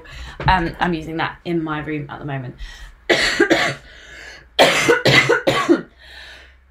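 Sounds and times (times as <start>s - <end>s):
speech: 0.4s - 4.0s
person coughing harshly: 3.1s - 3.9s, 4.6s - 5.9s.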